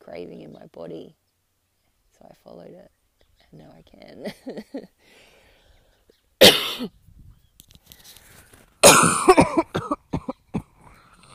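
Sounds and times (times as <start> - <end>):
speech: 0.2 - 1.2, 2.2 - 5.3, 6.8 - 7.0
harsh coughing: 6.4 - 6.9, 8.8 - 10.9
throat clearing: 8.8 - 11.3.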